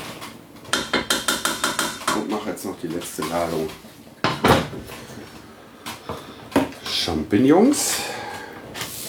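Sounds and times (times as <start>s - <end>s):
utensil scraping and knocking against a deeper pan while transferring food: 0.7s - 3.5s
speech: 2.8s - 4.0s, 7.1s - 8.2s.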